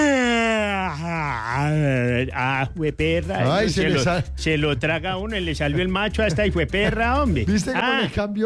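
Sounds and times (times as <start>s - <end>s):
long drawn-out human yawn with groaning voiced tone: 0.0s - 2.0s
speech: 2.3s - 8.4s.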